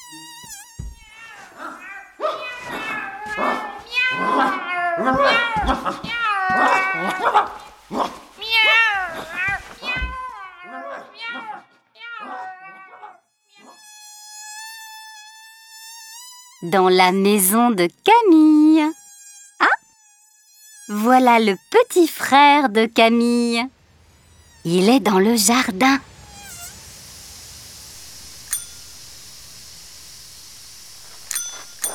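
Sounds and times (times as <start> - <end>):
steady high buzzing tone: 0.0 - 1.2, 13.5 - 31.9
cat meowing: 1.0 - 7.6, 8.4 - 13.8
speech: 5.0 - 6.1, 7.1 - 8.1, 16.7 - 19.0, 20.9 - 23.8, 24.6 - 26.1.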